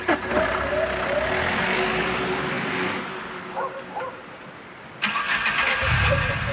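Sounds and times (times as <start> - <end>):
car engine cranking, idling and revving: 0.0 - 3.1, 5.0 - 6.5
faint dog barking: 3.5 - 4.4.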